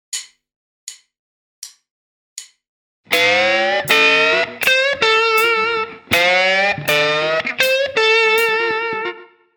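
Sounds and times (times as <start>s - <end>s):
blues guitar licks: 3.1s - 9.5s.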